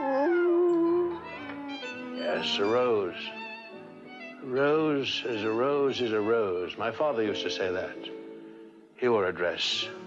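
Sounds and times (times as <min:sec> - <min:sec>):
wolf howling: 0:00.0 - 0:03.3
speech: 0:02.3 - 0:03.4, 0:04.4 - 0:08.2, 0:09.0 - 0:10.0.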